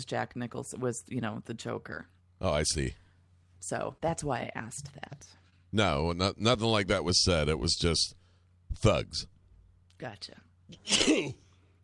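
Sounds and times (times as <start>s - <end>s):
speech: 0.0s - 3.0s, 3.6s - 9.3s, 10.0s - 11.4s
person sneezing: 10.7s - 11.5s.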